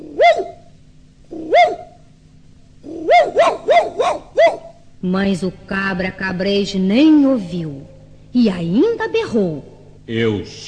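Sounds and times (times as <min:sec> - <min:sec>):
little dog barking loudly: 0:00.0 - 0:00.6, 0:01.4 - 0:02.0, 0:02.9 - 0:04.8
speech: 0:05.0 - 0:10.6.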